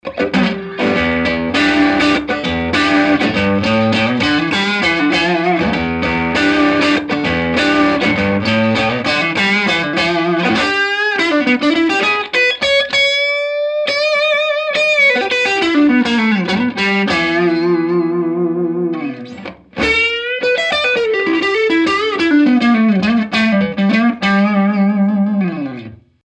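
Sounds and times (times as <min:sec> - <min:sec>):
crunch electric guitar on neck pickup: 0:00.0 - 0:26.2.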